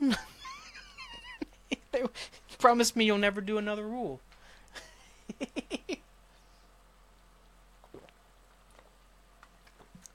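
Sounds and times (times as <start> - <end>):
speech: 2.6 - 4.3
wet gulping swallows of a big drink: 7.8 - 9.0.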